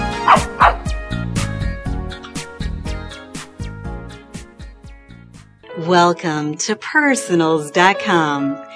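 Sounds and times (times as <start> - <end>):
bouncy musical backing with rhythmic punchy notes: 0.0 - 8.7
dog barking: 0.2 - 0.9
speech: 5.9 - 8.7.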